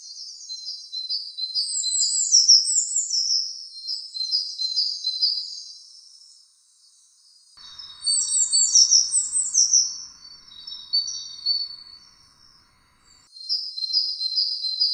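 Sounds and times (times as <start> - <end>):
tit song of high thin twittering phrases: 7.6 - 13.2.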